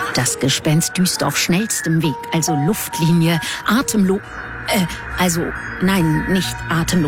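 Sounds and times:
speech: 0.2s - 7.0s
electronic alarm beeping: 2.2s - 7.0s.

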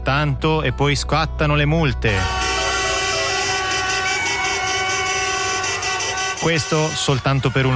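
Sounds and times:
speech: 0.1s - 2.4s, 6.4s - 7.7s
car horns honking in street celebration: 2.1s - 7.7s.

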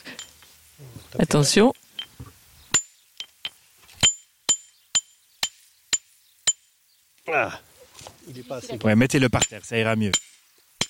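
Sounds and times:
speech: 1.1s - 1.8s, 8.5s - 10.3s
geologist's hammer striking a hard river pebble: 4.0s - 6.7s, 9.4s - 10.8s.

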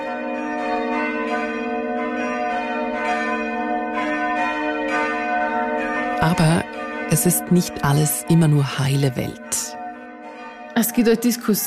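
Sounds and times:
church bells ringing in a full peal: 0.0s - 11.6s
speech: 6.2s - 9.8s, 10.8s - 11.6s.

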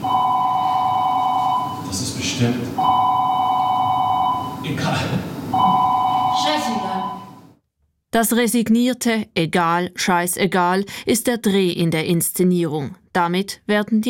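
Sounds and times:
telephone ringing: 0.0s - 1.9s, 2.8s - 4.7s, 5.5s - 7.6s
speech: 2.4s - 2.8s, 8.2s - 14.0s.

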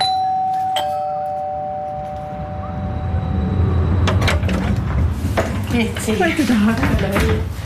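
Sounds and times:
doorbell chiming: 0.0s - 3.4s
low rumble: 1.1s - 6.4s
speech: 5.8s - 7.6s.

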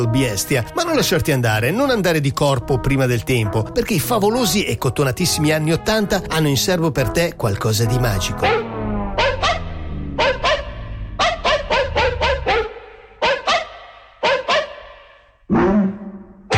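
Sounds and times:
speech: 0.0s - 8.6s
dog barks synthesized and played like notes on a keyboard: 8.2s - 16.4s.

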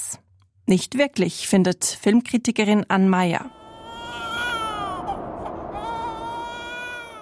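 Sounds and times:
speech: 0.7s - 3.6s
newborn baby crying: 3.4s - 7.1s.

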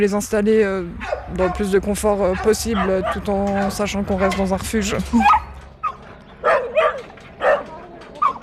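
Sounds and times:
speech: 0.0s - 5.4s
young Staffordshire terrier barking at an animal shelter: 1.0s - 4.5s, 5.2s - 8.4s.

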